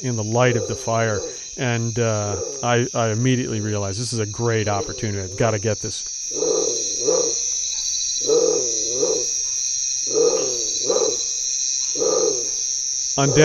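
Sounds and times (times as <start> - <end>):
Bare-throated Tiger Heron giving deep hoarse croaking calls at nightfall in Guatemala: 0.0 - 1.6, 2.2 - 2.7, 6.3 - 7.6, 8.2 - 9.4, 10.0 - 11.3, 11.9 - 13.4
speech: 0.0 - 6.6, 13.2 - 13.4
steady high hiss: 0.0 - 13.4.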